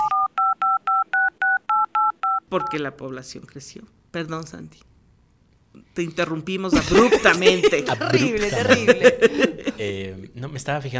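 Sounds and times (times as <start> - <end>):
telephone keypad touch-tones: 0.0 - 2.8
speech: 2.5 - 4.9, 6.0 - 10.9
laughter: 6.7 - 10.0.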